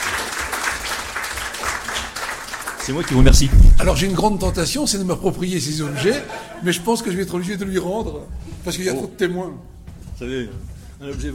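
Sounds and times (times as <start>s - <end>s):
audience applause: 0.0s - 5.1s
speech: 2.9s - 11.3s
laughter: 5.4s - 7.3s.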